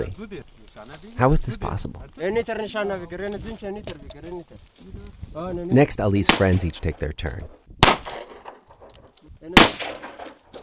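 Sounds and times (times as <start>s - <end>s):
speech: 0.0s - 8.1s, 9.4s - 10.0s
bullet striking dirt: 6.2s - 7.0s, 7.8s - 10.6s
gunshot from a gun fired at a target: 7.8s - 8.6s, 9.5s - 10.4s.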